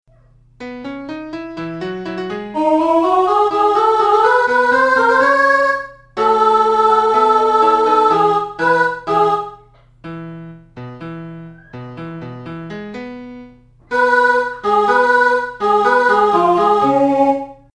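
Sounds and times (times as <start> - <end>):
mezzo-soprano singing: 2.2 - 9.7, 13.9 - 17.7.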